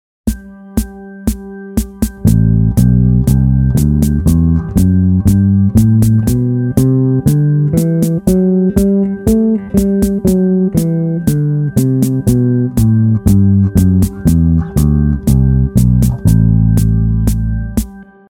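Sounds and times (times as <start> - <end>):
bass groove in Dorian mode in A: 1.8 - 18.0.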